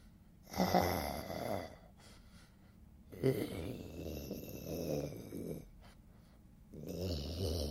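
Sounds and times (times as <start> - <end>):
voice imitating a mouth-breathing snore: 0.5 - 1.9, 3.1 - 5.7, 6.7 - 7.6.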